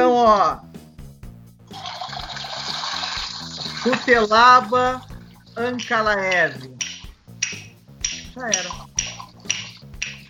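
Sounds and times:
speech: 0.2s - 0.7s, 3.8s - 6.8s, 8.4s - 8.9s
toilet flushing: 1.7s - 5.5s.

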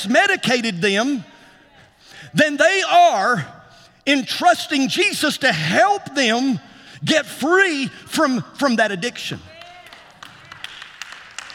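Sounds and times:
speech: 0.0s - 1.3s, 2.3s - 9.5s
scattered audience clapping: 9.5s - 11.5s.

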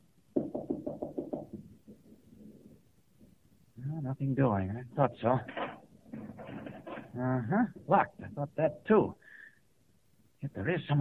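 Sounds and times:
knocking on a locked door: 0.3s - 1.7s
speech: 4.2s - 5.6s, 7.2s - 9.2s, 10.4s - 10.9s.

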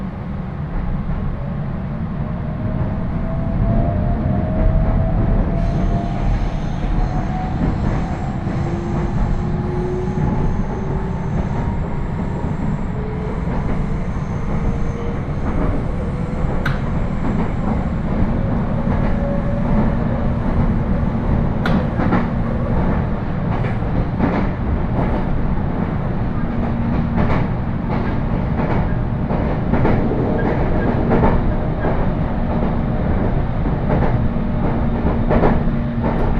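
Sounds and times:
rumble inside a moving local train car: 0.0s - 36.3s.

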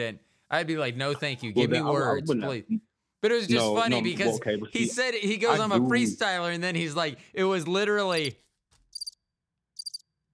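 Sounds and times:
speech: 0.0s - 8.5s
high-pitched cricket chirps: 8.9s - 9.2s, 9.8s - 10.1s.

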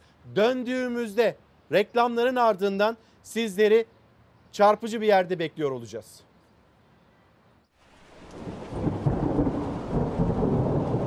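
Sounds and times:
speech: 0.3s - 6.3s
heavy rain pouring during an evening storm in Antalya: 7.8s - 11.0s
low thunder rumbling: 8.2s - 11.0s.

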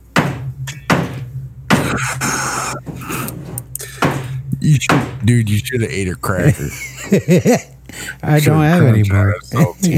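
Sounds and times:
hammer tapping on wood: 0.2s - 2.0s, 4.0s - 5.2s
speech: 4.7s - 9.9s
laughter: 6.2s - 7.8s, 9.5s - 9.9s.

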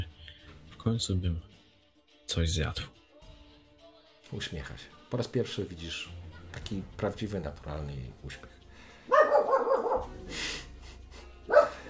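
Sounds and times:
speech: 0.8s - 1.5s, 2.3s - 2.9s, 4.3s - 8.6s
dog in a farmyard barking in the distance: 9.0s - 10.2s, 11.4s - 11.8s.

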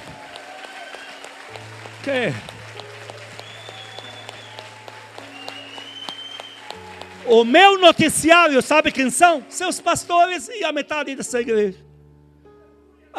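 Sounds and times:
audience applauding loudly: 0.0s - 11.3s
speech: 2.0s - 2.6s, 7.3s - 11.9s.

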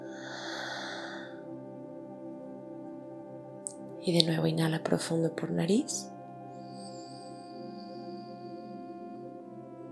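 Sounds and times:
long deep exhale through the mouth: 0.0s - 1.4s
speech: 4.0s - 6.2s.

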